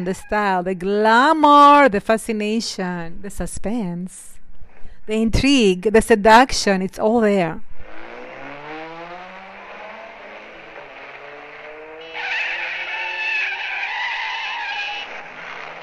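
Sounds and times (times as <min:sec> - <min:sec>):
speech: 0:00.0 - 0:04.3, 0:05.1 - 0:07.7
car engine revving and accelerating hard in a film scene: 0:07.8 - 0:15.8
car tires screeching as the car skids: 0:07.8 - 0:15.8.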